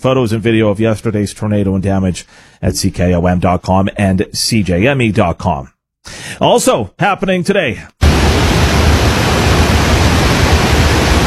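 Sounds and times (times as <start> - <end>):
speech: 0.0 - 8.0
water flowing through a dam spillway: 8.0 - 11.2.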